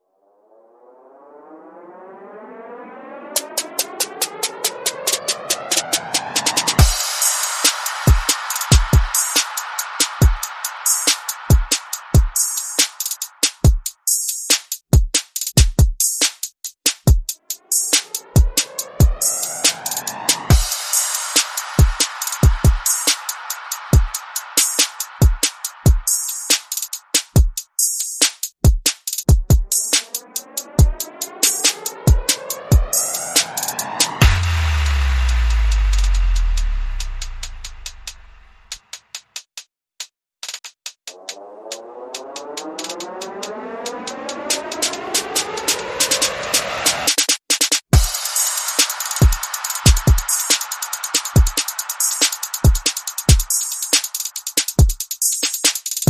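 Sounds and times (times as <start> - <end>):
sound effects: 0.2 - 13.4, 17.6 - 26.8, 29.7 - 38.7, 41.1 - 47.1
percussion: 3.4 - 56.0.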